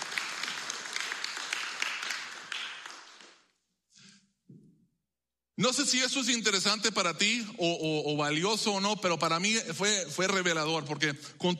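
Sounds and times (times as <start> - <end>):
crowd applauding: 0.0 - 3.5
speech: 5.6 - 11.5.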